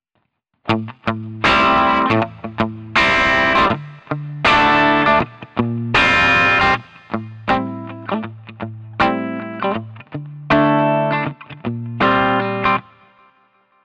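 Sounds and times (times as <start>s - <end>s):
mellow crunch guitar through an amplifier: 0.7s - 13.3s.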